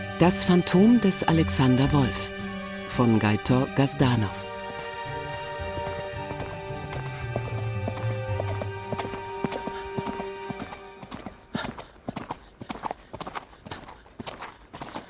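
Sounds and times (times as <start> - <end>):
speech: 0.2 - 2.4, 3.0 - 4.5
horse hooves clip-clopping along a deserted winding path: 4.6 - 15.0.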